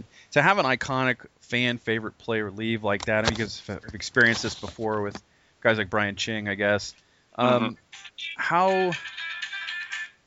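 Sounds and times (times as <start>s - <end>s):
speech: 0.3s - 9.2s
mobile phone ringtone playing a short musical tune: 8.9s - 10.2s.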